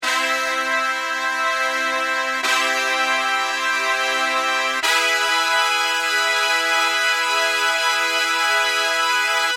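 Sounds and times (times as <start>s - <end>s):
synth brass with stereo chorus effect: 0.0s - 9.5s.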